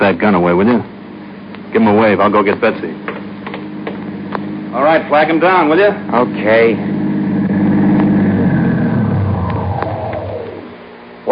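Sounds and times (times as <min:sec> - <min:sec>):
speech: 0:00.2 - 0:01.0, 0:01.7 - 0:03.1, 0:04.7 - 0:06.9
car engine slowing to a stop: 0:06.9 - 0:10.8.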